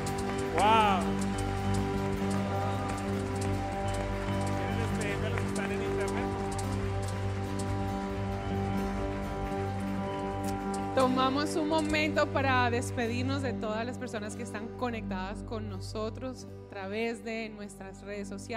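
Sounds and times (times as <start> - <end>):
audience applauding loudly: 0.0 - 12.0
sustained organ-like music tones: 0.0 - 12.7
speech: 11.0 - 18.5.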